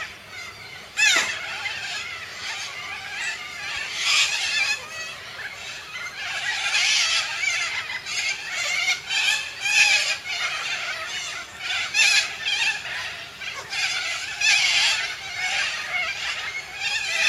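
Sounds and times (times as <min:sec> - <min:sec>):
Major Mitchell's cockatoo rasping screechy calls: 0:00.0 - 0:17.2.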